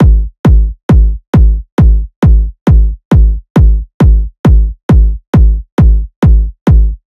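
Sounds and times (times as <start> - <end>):
techno kick drum loop: 0.0 - 7.0.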